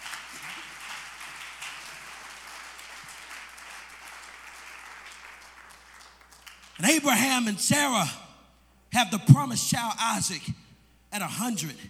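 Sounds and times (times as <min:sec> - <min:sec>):
congregation applauding: 0:00.0 - 0:06.9
speech: 0:06.8 - 0:08.2, 0:09.0 - 0:11.8.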